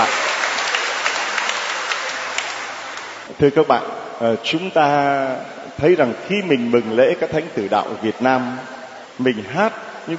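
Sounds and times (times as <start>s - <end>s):
audience applauding: 0.0s - 3.3s
speech: 3.4s - 10.1s.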